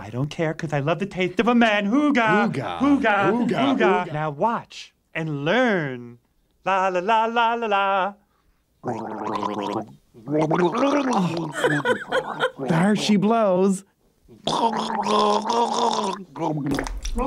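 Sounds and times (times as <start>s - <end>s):
speech: 0.0s - 8.2s, 8.8s - 17.2s
laughter: 2.3s - 4.3s, 11.2s - 13.0s
person gargling liquid while trying to say call letters: 8.8s - 12.5s, 14.3s - 17.2s.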